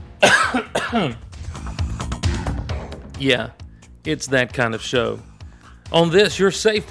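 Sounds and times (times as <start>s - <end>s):
person coughing: 0.2s - 1.3s
speech: 0.5s - 1.3s, 3.2s - 5.3s, 5.9s - 6.9s.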